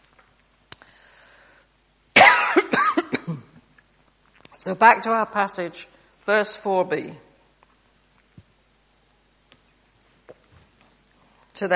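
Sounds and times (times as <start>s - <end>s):
faint breathy sound: 0.8s - 1.8s
person coughing from irritation by air conditioning: 2.2s - 3.6s
speech: 4.6s - 7.3s.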